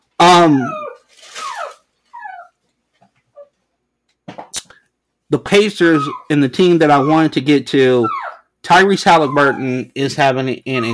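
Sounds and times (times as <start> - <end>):
dog whining and whimpering: 0.2 - 2.6, 5.6 - 9.9, 10.7 - 10.9
dog yelping: 0.2 - 2.6, 5.8 - 8.5, 9.1 - 9.8, 10.7 - 10.9
speech: 0.4 - 0.8, 5.3 - 10.9.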